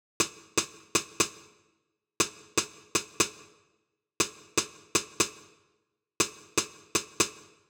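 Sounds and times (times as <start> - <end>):
little snare drum at 120 bpm in D: 0.2 - 1.6, 2.2 - 3.6, 4.2 - 5.6, 6.2 - 7.6.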